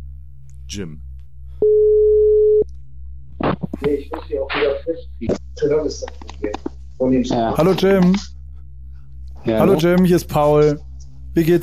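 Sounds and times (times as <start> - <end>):
speech: 0.7 - 1.1, 3.8 - 8.4, 9.5 - 11.6
telephone ringback tone as a call is placed: 1.6 - 2.6.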